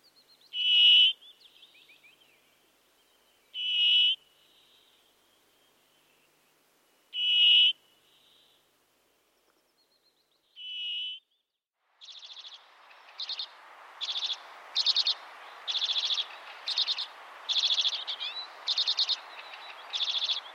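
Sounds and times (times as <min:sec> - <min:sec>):
soft hissing background: 0:00.0 - 0:11.0, 0:11.8 - 0:20.5
brambling calls: 0:03.6 - 0:04.2, 0:12.0 - 0:20.5.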